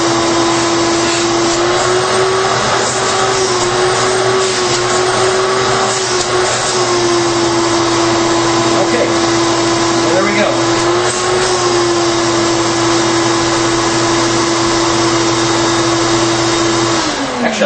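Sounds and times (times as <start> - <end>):
16-gallon wet/dry vacuum running: 0.0 - 17.6.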